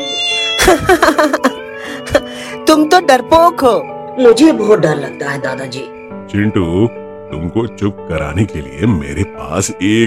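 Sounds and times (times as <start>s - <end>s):
cat meowing at night: 0.0s - 0.8s
speech: 0.7s - 10.0s.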